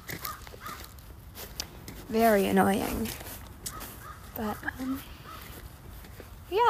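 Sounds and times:
raven croaking caws: 0.0s - 1.0s, 3.6s - 5.8s
faint footsteps during a walk: 0.0s - 6.6s
speech: 2.1s - 3.3s, 4.4s - 5.1s.

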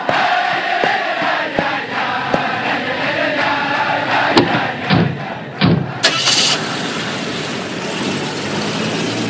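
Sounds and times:
people clapping: 0.0s - 5.4s
people shouting: 0.0s - 6.3s
large jubilant crowd of Hasidim singing and cheering: 0.0s - 6.6s
car engine rumbling as the car pulls away: 0.0s - 9.2s.

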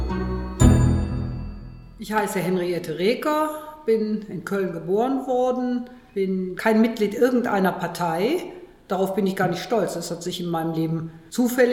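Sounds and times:
loud bell strike of a town hall glockenspiel: 0.0s - 2.0s
town hall glockenspiel chiming on the Alter Markt in Cologne: 0.0s - 2.0s
speech: 2.0s - 11.7s.

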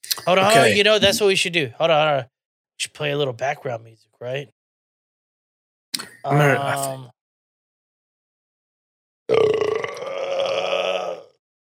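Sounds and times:
speech: 0.2s - 4.6s, 6.0s - 7.2s
person burping: 0.4s - 1.2s, 9.3s - 11.4s.

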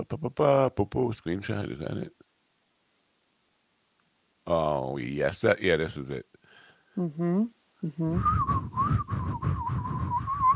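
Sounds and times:
speech: 0.0s - 2.2s, 4.5s - 6.4s, 7.0s - 9.5s
person whistling a wavering tune: 8.1s - 10.5s.

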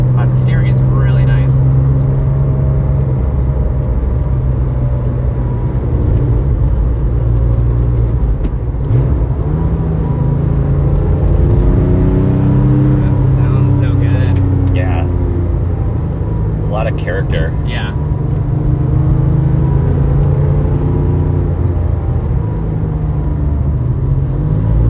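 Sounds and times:
911 GT3 sports car engine revving and accelerating: 0.0s - 24.8s.

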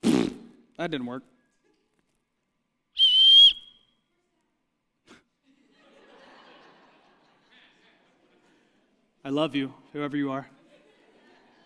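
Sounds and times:
speech: 0.8s - 1.4s, 9.2s - 10.6s
high-pitched whistle blown on a handheld whistle: 3.0s - 4.0s
laughter: 5.4s - 9.1s, 10.4s - 11.6s.

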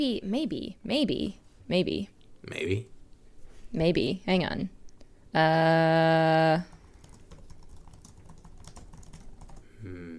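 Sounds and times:
speech: 0.0s - 3.0s, 3.7s - 6.8s
frantic typing on a computer keyboard: 6.7s - 9.6s.

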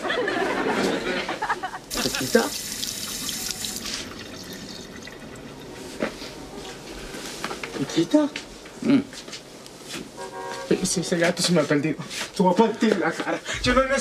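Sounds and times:
laughter: 0.0s - 2.6s, 12.9s - 13.9s
tap water running into a glass: 1.9s - 5.8s
speech: 2.0s - 2.6s, 8.0s - 9.3s, 10.9s - 14.0s.

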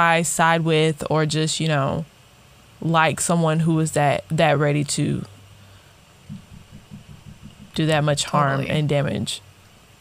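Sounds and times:
speech: 0.0s - 2.2s, 2.8s - 5.4s, 7.8s - 9.5s
hammering inside a house: 6.3s - 8.2s.

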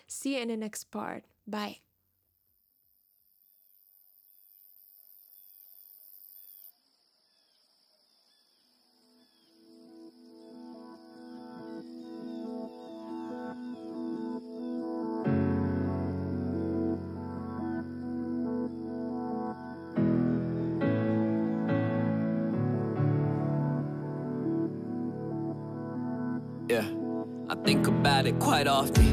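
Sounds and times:
speech: 0.1s - 1.9s, 28.4s - 29.1s
song with rich sustained chords: 9.5s - 29.1s.

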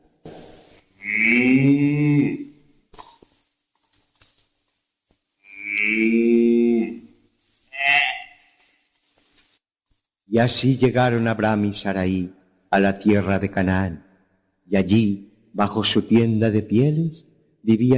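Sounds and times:
cows mooing: 1.0s - 2.5s, 5.5s - 7.1s
cattle lowing: 1.0s - 2.6s, 5.4s - 8.6s
speech: 10.4s - 14.0s, 14.7s - 17.9s.

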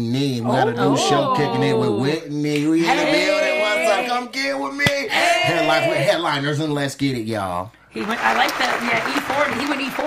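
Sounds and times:
speech: 0.0s - 10.0s
small group clapping after a freestyle rap: 8.0s - 10.0s.

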